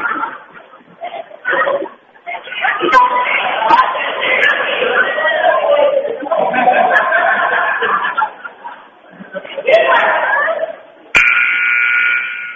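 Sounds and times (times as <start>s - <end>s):
laughter: 0.0s - 11.0s
basketball arena crowd noise and voices: 0.0s - 12.5s
basketball arena warning buzzer: 11.2s - 12.5s.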